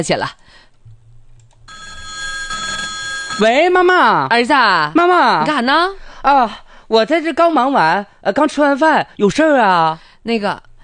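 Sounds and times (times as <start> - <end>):
speech: 0.0 - 0.7, 3.4 - 10.7
telephone ringing while someone calls their son: 1.7 - 3.6.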